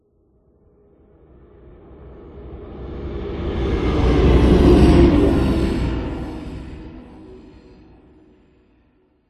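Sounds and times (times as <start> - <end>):
slow airy synth spaceship whoosh passby: 2.9 - 8.4.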